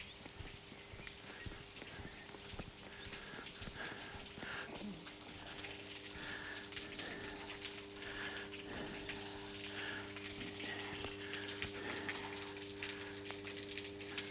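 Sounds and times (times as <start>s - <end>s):
low electrical hum from an adjacent transformer station: 0.0s - 14.2s
water trickling and dripping from a leaky water tank at the pipe connector: 0.0s - 14.2s.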